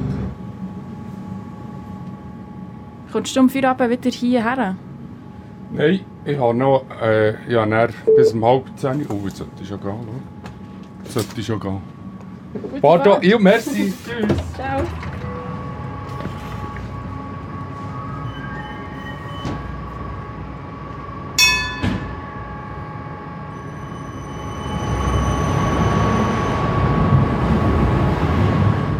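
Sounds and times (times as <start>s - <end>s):
tram rolling on rails: 0.0s - 7.1s, 8.7s - 28.9s
speech: 3.1s - 4.8s, 5.7s - 10.4s, 11.0s - 11.9s, 12.5s - 15.1s
tram bell ding: 21.4s - 23.0s.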